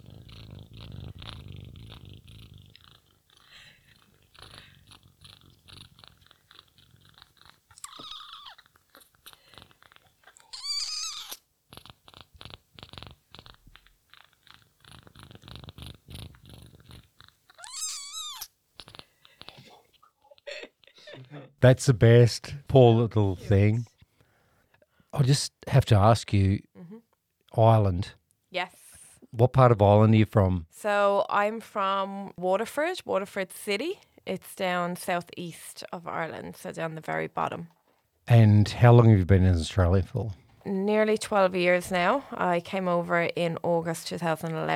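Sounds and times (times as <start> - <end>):
kitten giving thin high mews: 0.0 - 21.5
5-week-old hand-raised female kitten purring: 0.0 - 24.0, 39.5 - 44.7
speech: 21.6 - 23.9, 25.2 - 26.7, 27.6 - 28.7, 29.4 - 44.7.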